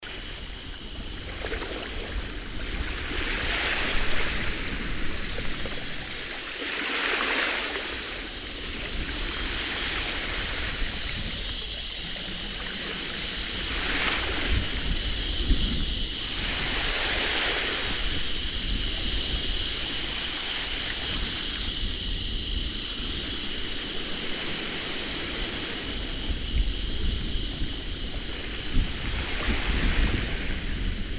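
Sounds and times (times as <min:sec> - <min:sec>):
summer seaside breeze: 0:00.0 - 0:31.1.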